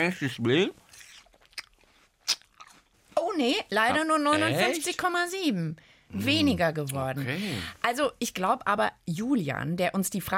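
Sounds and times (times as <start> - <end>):
speech: 0.0 - 0.8, 3.4 - 10.3
person biting and chewing an apple with loud smacking: 0.8 - 3.0.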